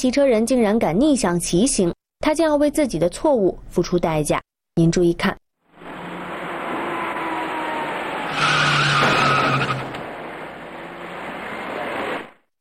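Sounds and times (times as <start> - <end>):
speech: 0.0 - 5.4
car tires skidding as a white car brakes on a wet road: 5.7 - 12.4
steady road noise: 5.7 - 12.5.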